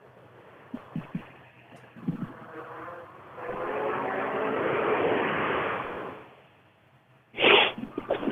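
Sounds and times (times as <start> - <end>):
sharp burst of noise: 0.3 - 6.8, 7.4 - 8.2
rally car engine roaring on a forest rally stage: 0.4 - 6.6.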